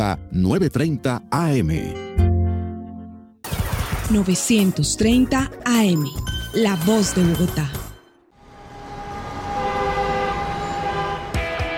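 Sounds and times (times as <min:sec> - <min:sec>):
speech: 0:00.0 - 0:02.3, 0:04.1 - 0:07.8
city traffic roar: 0:08.3 - 0:11.7
long sustained horn blaring: 0:08.3 - 0:11.7.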